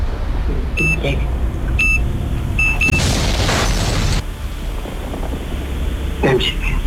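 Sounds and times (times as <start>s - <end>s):
low rumbling background: 0.0s - 6.8s
speech: 0.8s - 1.4s, 6.2s - 6.8s
short electronic beeps: 0.8s - 2.0s, 2.6s - 3.1s
explosion sound effect: 1.6s - 6.0s.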